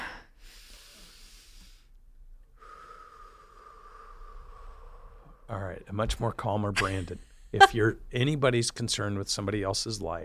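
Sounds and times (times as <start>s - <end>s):
breathing in through the nose and out through the mouth: 0.0s - 5.5s
speech: 5.5s - 10.2s.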